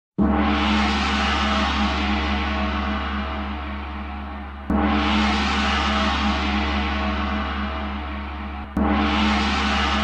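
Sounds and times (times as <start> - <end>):
gong: 0.2 - 10.0.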